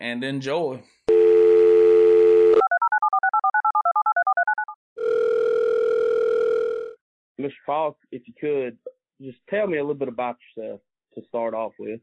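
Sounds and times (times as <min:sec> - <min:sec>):
speech: 0:00.0 - 0:01.0, 0:07.4 - 0:12.0
telephone dial tone before a phone call: 0:01.1 - 0:07.0.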